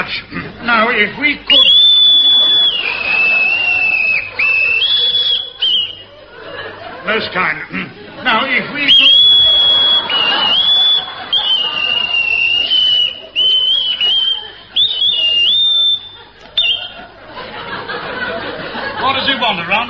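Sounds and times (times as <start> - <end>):
faint murmur: 0.0 - 19.8
speech: 0.1 - 2.8, 7.1 - 9.3
laughter: 0.2 - 19.8
person whistling a warbling birdsong imitation: 1.5 - 6.0, 8.9 - 17.0.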